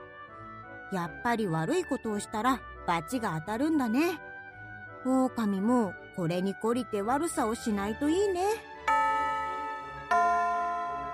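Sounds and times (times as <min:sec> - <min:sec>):
speech: 0:00.9 - 0:04.3, 0:05.0 - 0:08.7
chime ringing with bell-like tones: 0:08.9 - 0:11.1.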